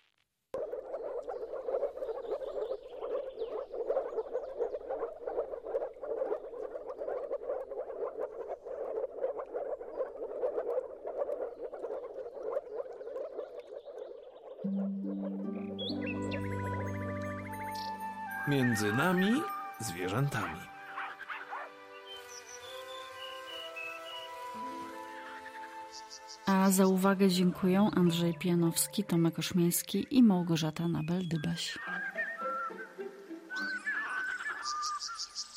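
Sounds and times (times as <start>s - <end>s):
chorus of moor frogs calling: 0.6s - 35.5s
music: 14.6s - 30.3s, 31.7s - 34.1s
speech: 18.5s - 20.7s, 26.7s - 32.0s.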